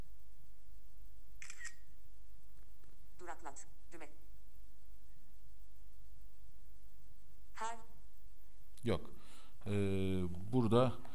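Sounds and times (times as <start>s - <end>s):
low steady hiss: 0.0s - 11.1s
camera shutter taking a picture: 1.4s - 1.9s
speech: 3.4s - 4.2s, 8.8s - 11.1s.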